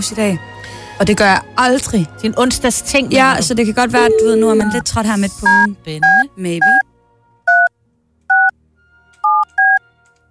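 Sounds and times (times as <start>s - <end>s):
speech: 0.0s - 6.8s
telephone keypad dialing beeps: 4.0s - 4.8s, 5.5s - 6.8s, 8.3s - 8.5s, 9.2s - 9.8s.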